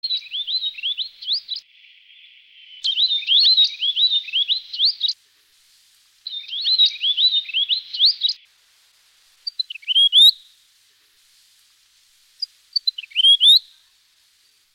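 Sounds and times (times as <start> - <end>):
weebill calling in a Canberra garden: 0.0 - 1.6, 2.8 - 5.2, 6.3 - 8.4, 9.4 - 10.5, 12.4 - 13.8.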